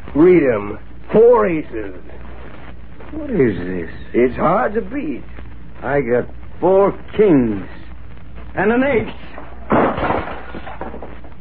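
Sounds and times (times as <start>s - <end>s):
speech: 0.2s - 2.2s, 3.1s - 7.8s, 8.5s - 9.5s
lamp crashing to the floor with breaking glass: 9.4s - 11.3s
table being kicked: 9.7s - 11.3s.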